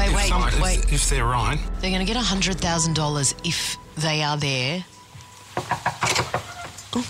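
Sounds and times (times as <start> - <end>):
speech: 0.6 - 5.0
sharp knocks on a door: 5.6 - 6.5.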